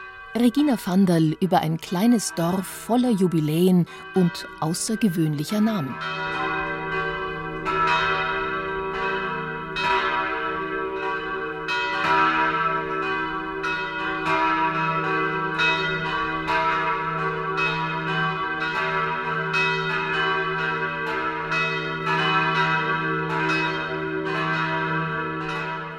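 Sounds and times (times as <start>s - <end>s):
church bells ringing midday peal in Wolkshausen, Lower Franconia, Bavaria: 0.0s - 25.9s
speech: 0.4s - 6.6s.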